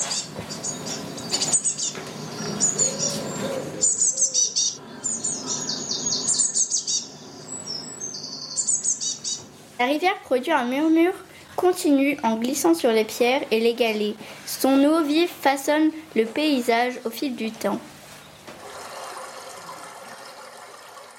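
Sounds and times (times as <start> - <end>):
Eurasian blue tit chirping and trilling: 0.0 - 9.5
speech: 9.8 - 17.9.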